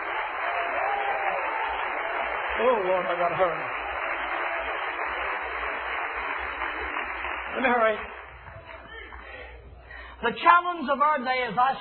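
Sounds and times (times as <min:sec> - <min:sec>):
audience clapping hands in sustained applause: 0:00.0 - 0:09.4
speech: 0:02.6 - 0:03.8, 0:07.6 - 0:08.1, 0:10.2 - 0:11.7.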